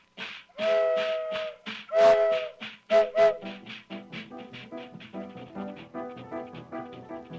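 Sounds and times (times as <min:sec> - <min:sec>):
steady rhythmic chugging and hissing: 0:00.0 - 0:07.3
long loud whistle blasts: 0:00.6 - 0:03.6.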